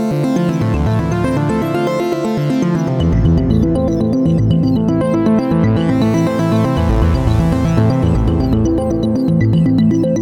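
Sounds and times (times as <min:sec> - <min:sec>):
synthesizer arpeggio drops: 0:00.1 - 0:10.0.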